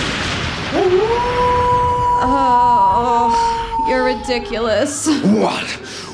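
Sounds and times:
wolf howling: 0.7 - 5.3
speech: 4.1 - 5.8.

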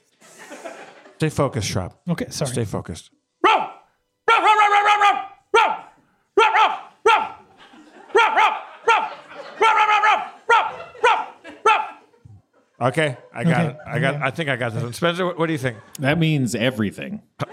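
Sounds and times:
laughter: 0.2 - 1.3, 6.4 - 16.4
speech: 1.2 - 3.2, 12.8 - 17.3
person imitating dog barks and yelps: 3.4 - 7.4, 8.2 - 12.0.

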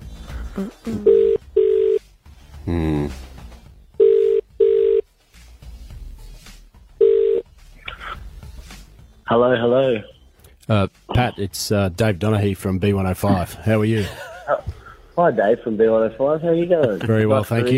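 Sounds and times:
speech: 0.6 - 1.4, 2.7 - 3.2, 10.7 - 14.3, 15.2 - 17.7
telephone ringback tone in double rings: 1.0 - 2.0, 4.0 - 5.0, 7.0 - 7.4
laughter: 13.3 - 14.9, 16.6 - 17.5.

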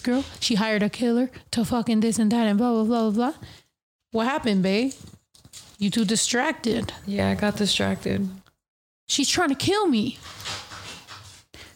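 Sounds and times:
speech: 0.0 - 5.2, 5.8 - 8.4, 9.1 - 10.6
dogs scratching at a wooden door with claws: 10.1 - 11.6.

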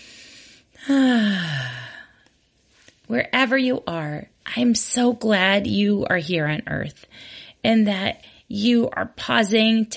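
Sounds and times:
person taking a deep breath in: 0.0 - 2.2, 7.1 - 7.6
person releasing a voiced sighing exhale: 0.8 - 2.2
speech: 3.1 - 9.9.

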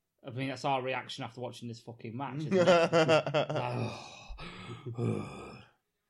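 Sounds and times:
speech: 0.2 - 5.6
laughter: 2.4 - 3.9
person imitating heavy ragged wheezing breathing: 3.6 - 5.8.

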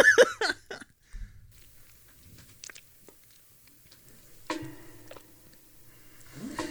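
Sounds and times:
throaty gulp of swallowed saliva: 1.6 - 6.6
wet mouth clicks: 1.6 - 6.6.

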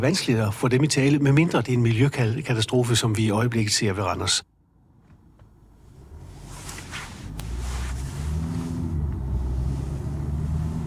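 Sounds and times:
speech: 0.0 - 4.5
car engine and tyre rumble driving along a main road in rural Denmark: 4.5 - 10.8.

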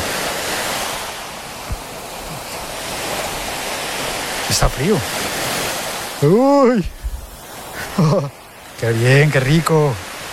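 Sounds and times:
Mediterranean Sea waves breaking on shore: 0.0 - 10.3
faint low thump: 1.7 - 1.9, 6.9 - 7.3
speech: 4.5 - 5.4, 6.2 - 7.0, 8.0 - 10.1
laughter: 7.8 - 8.4.

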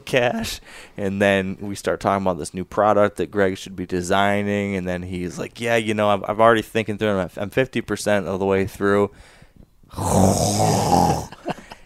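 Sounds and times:
speech: 0.1 - 11.3
voice imitating a long rasping snore: 9.9 - 11.4.

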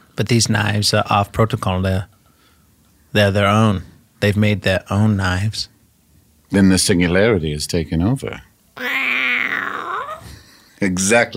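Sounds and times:
speech: 0.2 - 2.1, 3.1 - 5.7, 6.5 - 9.1, 10.8 - 11.3
cat growling: 8.8 - 10.4.

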